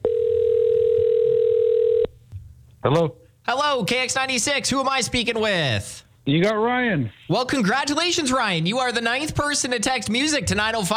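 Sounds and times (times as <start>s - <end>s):
telephone dial tone while placing a call: 0.0s - 2.1s
speech: 2.8s - 10.9s.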